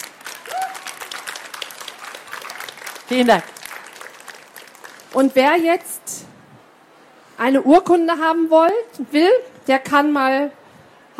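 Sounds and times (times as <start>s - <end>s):
audience applause at a trade fair in Leipzig: 0.0s - 5.6s
speech: 3.1s - 3.5s, 5.2s - 6.2s, 7.4s - 10.6s.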